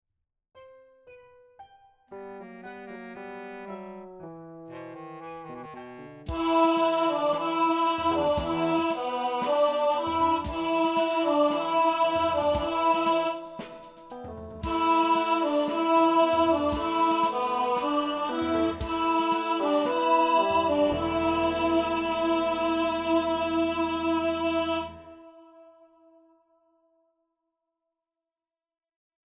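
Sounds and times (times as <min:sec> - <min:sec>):
tenor and baritone singing in rehearsal: 0:06.3 - 0:25.3.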